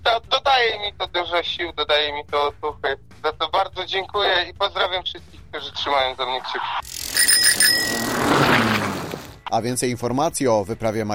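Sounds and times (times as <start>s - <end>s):
speech: 0.0s - 8.9s, 9.5s - 11.1s
bicycle bell ringing: 6.8s - 8.9s.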